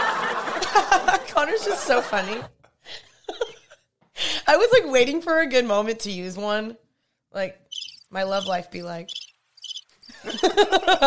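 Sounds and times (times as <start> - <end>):
laughter: 0.0 - 3.8, 10.1 - 11.0
speech: 1.5 - 3.0, 4.5 - 9.2, 10.2 - 11.0
crickets chirping: 7.7 - 10.6.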